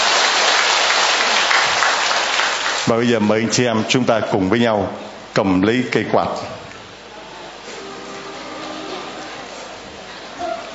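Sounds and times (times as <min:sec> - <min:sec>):
congregation applauding at a church gathering: 0:00.0 - 0:03.1
speech: 0:02.9 - 0:06.6.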